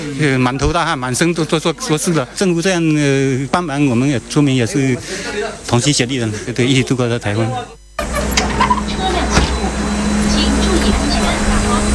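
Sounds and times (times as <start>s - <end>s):
faint indistinct voices murmuring: 0.0s - 11.9s
speech: 0.1s - 7.8s
bus engine rumbling with mechanical clatter: 8.0s - 11.9s.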